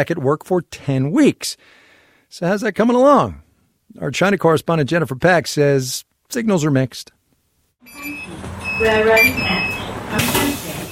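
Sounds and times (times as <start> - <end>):
speech: 0.0 - 7.2, 7.8 - 10.4
electronic tones chiming inside a bus: 7.8 - 10.0
road noise inside a bus: 7.8 - 10.9
bus engine rumble on a busy commute: 7.9 - 10.9.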